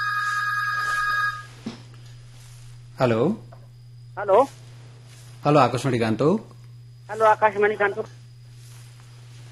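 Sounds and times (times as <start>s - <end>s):
telephone ringing on an unanswered call: 0.0s - 1.6s
low hum: 0.0s - 9.5s
speech: 3.0s - 3.5s, 4.2s - 4.6s, 5.4s - 6.5s, 7.1s - 8.2s.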